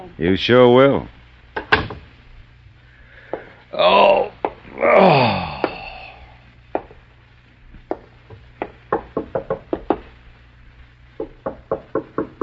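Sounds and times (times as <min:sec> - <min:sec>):
speech: 0:00.0 - 0:01.2
faint low hum: 0:00.0 - 0:12.4
knocking on the front door of an apartment: 0:07.9 - 0:10.0, 0:11.2 - 0:12.4.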